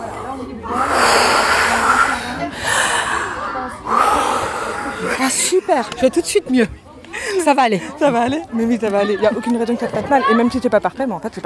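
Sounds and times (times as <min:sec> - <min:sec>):
loud forceful breathing exercise: 0:00.0 - 0:05.7
speech: 0:05.7 - 0:06.8, 0:07.4 - 0:11.4.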